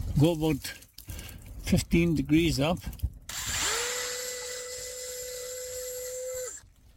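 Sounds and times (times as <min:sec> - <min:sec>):
speech: 0:00.2 - 0:00.8, 0:01.7 - 0:03.0
power drill boring a hole into a birch tree to tap it: 0:03.3 - 0:06.6.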